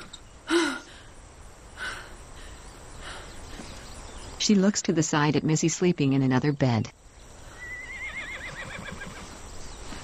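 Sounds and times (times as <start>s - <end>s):
speech: 4.5s - 7.0s
horse plowing land neighing: 7.6s - 9.3s.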